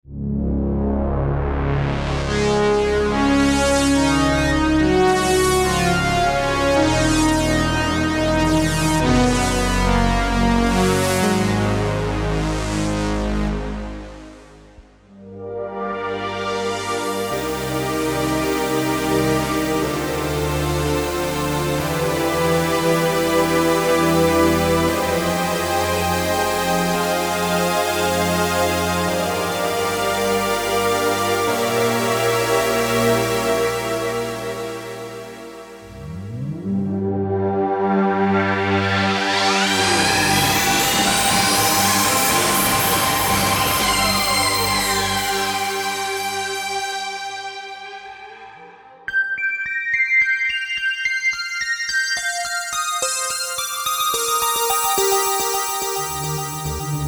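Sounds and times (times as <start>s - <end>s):
synth pads: 0.1s - 50.9s, 51.6s - 57.0s.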